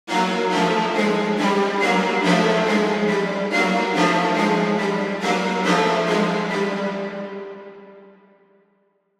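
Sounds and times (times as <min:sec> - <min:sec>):
intense mid-register horror strings: 0:00.1 - 0:08.3.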